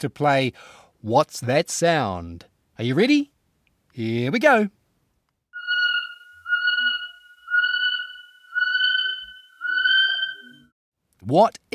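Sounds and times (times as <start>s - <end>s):
speech: 0.0s - 3.3s, 4.0s - 4.8s, 11.2s - 11.7s
kiwi whistled calls: 5.6s - 10.7s.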